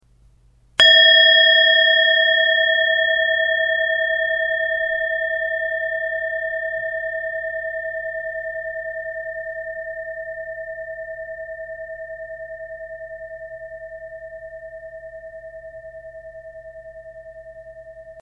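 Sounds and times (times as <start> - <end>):
singing bowl sound test: 0.8 - 18.2.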